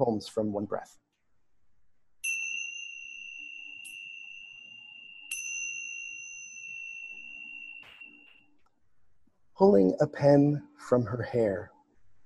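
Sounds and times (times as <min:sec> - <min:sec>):
speech: 0:00.0 - 0:01.0, 0:09.6 - 0:11.7
tingsha bells ringing: 0:02.2 - 0:08.6.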